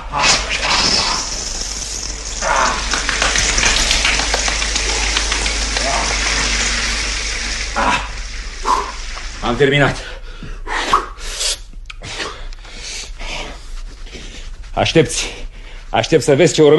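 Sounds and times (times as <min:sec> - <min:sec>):
shower water pouring: 0:00.0 - 0:10.6
speech: 0:09.6 - 0:10.1, 0:14.8 - 0:16.7.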